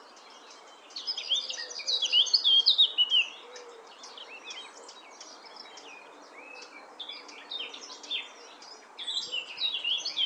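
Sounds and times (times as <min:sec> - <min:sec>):
Eurasian blackcap singing a brisk jumbled warble: 0:00.0 - 0:10.2.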